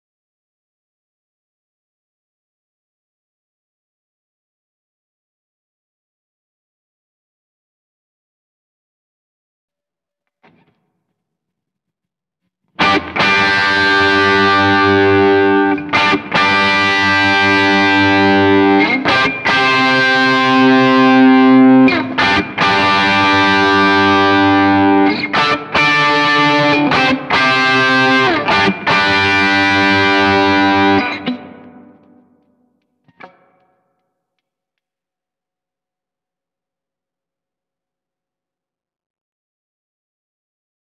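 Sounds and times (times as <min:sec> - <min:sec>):
guitar: 0:10.4 - 0:10.9, 0:12.7 - 0:34.0.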